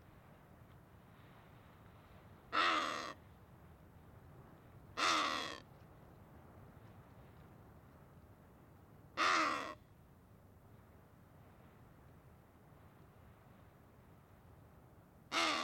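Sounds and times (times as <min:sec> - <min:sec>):
wattled ibis harsh hoarse cawing call on crags: 0:02.6 - 0:03.2, 0:05.0 - 0:05.6, 0:15.3 - 0:15.6.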